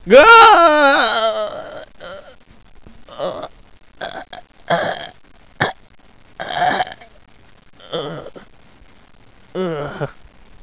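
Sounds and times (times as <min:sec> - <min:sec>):
scientist screaming: 0:00.0 - 0:01.8.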